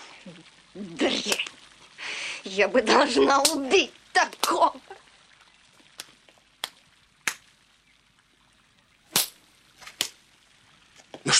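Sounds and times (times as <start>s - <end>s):
speech: 0.2s - 1.6s, 2.4s - 5.0s
open-handed slaps to the face: 3.4s - 3.6s, 6.0s - 7.4s, 9.2s - 10.2s.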